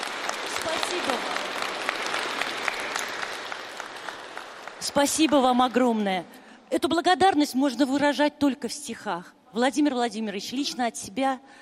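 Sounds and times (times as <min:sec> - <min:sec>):
audience applause: 0:00.0 - 0:05.6
speech: 0:04.8 - 0:11.6.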